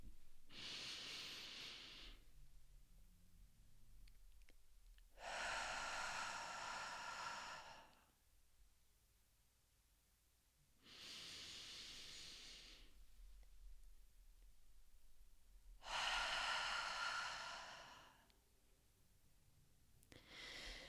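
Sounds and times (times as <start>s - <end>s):
slow box breathing, long airy breaths in and out: 0.0s - 2.9s, 3.7s - 8.2s, 10.8s - 18.4s, 20.0s - 20.8s.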